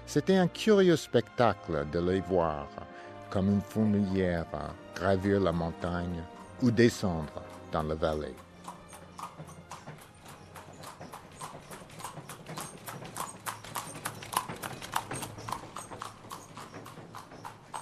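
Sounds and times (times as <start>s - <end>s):
speech: 0.1s - 8.4s
horse hooves clip-clopping on a hard surface in Yunnan: 4.6s - 17.8s.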